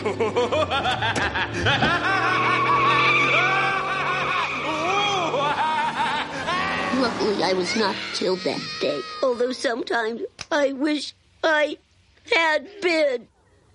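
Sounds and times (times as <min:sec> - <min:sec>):
speech: 0:00.0 - 0:02.1, 0:07.2 - 0:13.3
busy mix of voices and laughter-like sounds: 0:00.0 - 0:08.2
luxury car tires screeching: 0:01.4 - 0:09.4.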